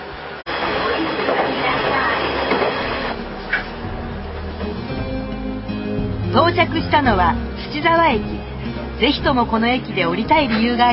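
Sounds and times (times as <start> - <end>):
train pulling away from a station: 0.0 - 7.8
speech: 6.6 - 8.4, 9.0 - 10.9.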